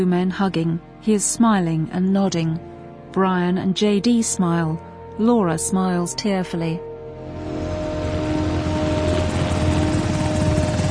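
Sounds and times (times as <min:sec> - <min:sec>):
speech: 0:00.0 - 0:07.6
military helicopter rotor and engine drone while landing: 0:07.4 - 0:10.8.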